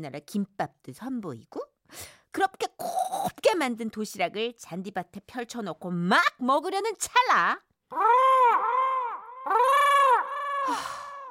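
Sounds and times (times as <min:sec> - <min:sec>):
speech: 0:00.0 - 0:08.7, 0:10.7 - 0:11.0
crow cawing: 0:08.0 - 0:11.2.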